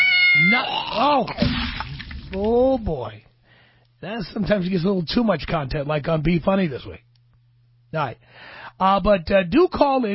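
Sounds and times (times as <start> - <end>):
hungry cat meowing: 0.0 - 0.9
speech: 0.4 - 3.3, 4.0 - 7.0, 7.9 - 10.1.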